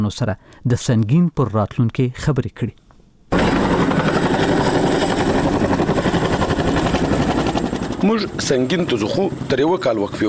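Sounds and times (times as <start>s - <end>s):
speech: 0.0s - 3.7s, 8.0s - 10.2s
American Chinook helicopter rotor thudding in flight to Sangin district, northern Helmand: 3.3s - 9.5s
American Chinook helicopter engine roar: 3.3s - 10.2s.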